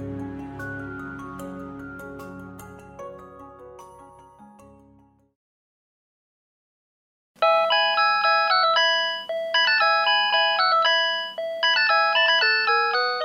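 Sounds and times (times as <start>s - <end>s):
synthesized mobile phone ringtone playing a classical melody: 7.4s - 13.2s.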